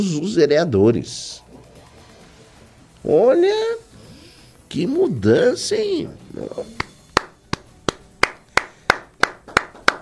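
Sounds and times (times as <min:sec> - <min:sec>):
speech: 0:00.0 - 0:01.4, 0:03.0 - 0:03.9, 0:04.7 - 0:06.8
person clapping hands: 0:06.7 - 0:10.0.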